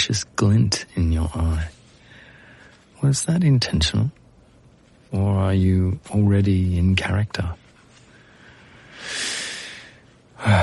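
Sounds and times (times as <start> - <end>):
speech: 0.0 - 1.8, 3.0 - 4.2, 5.1 - 7.6, 10.4 - 10.6
person taking a deep noisy breath: 8.1 - 10.6.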